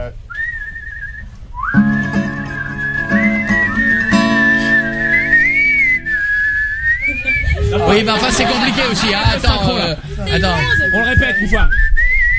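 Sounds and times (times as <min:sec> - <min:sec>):
several people whistling the opening notes of a song: 0:00.3 - 0:07.7, 0:10.4 - 0:12.3
laughter: 0:07.0 - 0:11.1
speech: 0:08.0 - 0:11.9.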